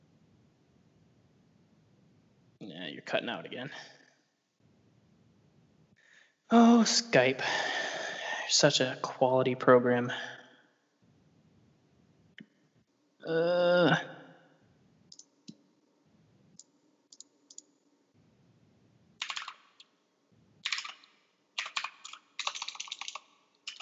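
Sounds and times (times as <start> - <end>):
speech: 3.0 - 4.0, 6.5 - 7.9, 8.5 - 10.4, 13.2 - 14.1
typing on a computer keyboard through an online voice call: 19.2 - 19.9, 20.6 - 23.7.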